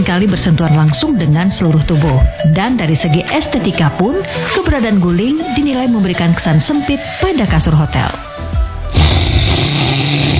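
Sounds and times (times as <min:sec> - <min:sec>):
speech: 0:00.0 - 0:08.3
low grunt: 0:08.9 - 0:10.3
person snoring: 0:08.9 - 0:10.3.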